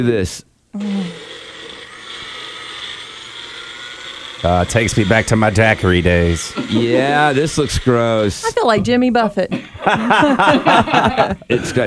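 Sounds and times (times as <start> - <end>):
speech: 0.0 - 1.3, 4.4 - 11.8
mini blender running: 0.8 - 8.9
laughter: 9.6 - 11.8.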